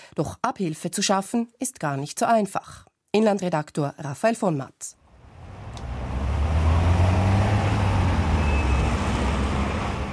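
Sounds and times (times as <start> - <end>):
speech: 0.2 - 5.0
road traffic noise of passing cars and heavier vehicles: 5.0 - 10.1.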